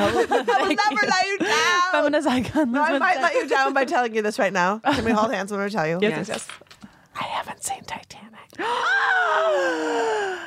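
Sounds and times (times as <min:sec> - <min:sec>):
laughter: 0:00.0 - 0:04.0
speech: 0:00.0 - 0:06.6, 0:07.2 - 0:10.4
loud shocked gasp stretching into a drawn-out cry: 0:01.3 - 0:02.1, 0:08.6 - 0:10.4.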